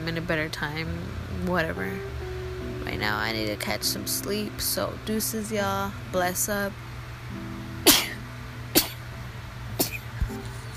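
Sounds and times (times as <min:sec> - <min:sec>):
steady low hum: 0:00.0 - 0:10.7
speech: 0:00.1 - 0:02.2, 0:02.8 - 0:06.9
person sneezing: 0:09.8 - 0:10.2.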